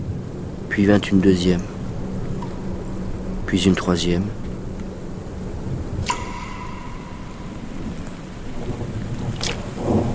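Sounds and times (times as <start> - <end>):
low rumble: 0.0 - 10.1
torrential rain pouring during a storm: 0.0 - 10.1
speech: 0.7 - 1.7, 3.5 - 4.4
sharp bright bursts: 6.0 - 9.0.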